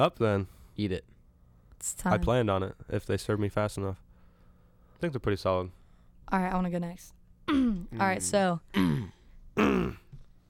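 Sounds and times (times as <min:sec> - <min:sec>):
speech: 0:00.0 - 0:01.1, 0:01.8 - 0:04.0, 0:05.0 - 0:10.0
gravelly rasping throat clear: 0:07.5 - 0:08.0, 0:08.7 - 0:10.2
brief low grunt: 0:08.7 - 0:10.2.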